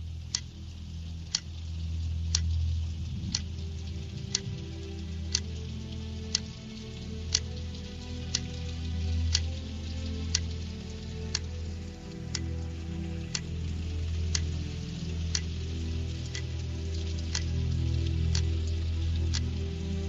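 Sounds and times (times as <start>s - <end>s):
low rumbling background: 0.0s - 20.0s
clock ticking: 0.3s - 0.5s, 1.3s - 1.5s, 2.3s - 2.5s, 3.2s - 3.6s, 4.3s - 5.6s, 6.3s - 6.5s, 7.3s - 7.6s, 9.3s - 9.5s, 10.3s - 10.6s, 11.3s - 11.6s, 12.2s - 12.6s, 14.3s - 14.6s, 15.3s - 15.5s, 17.3s - 17.5s, 18.3s - 18.5s.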